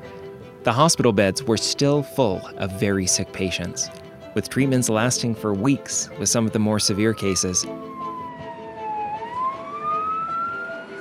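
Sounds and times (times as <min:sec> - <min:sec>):
speech: 0:00.6 - 0:07.9
low rumble of road traffic: 0:03.8 - 0:10.9
ambulance siren wailing as the ambulance pulls up to a university hospital: 0:06.2 - 0:10.9.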